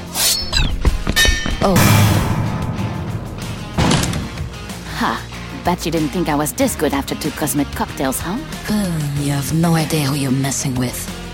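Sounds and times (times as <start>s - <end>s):
blade striking a heavy drink tray: 1.2s - 4.8s
speech: 1.6s - 2.2s, 5.0s - 11.3s
low sustained rumble: 1.8s - 5.7s.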